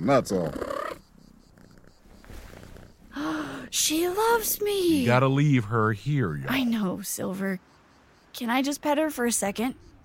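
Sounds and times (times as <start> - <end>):
speech: 0.0 - 0.8, 3.8 - 7.8, 8.4 - 9.9
female cat purring: 0.0 - 5.2.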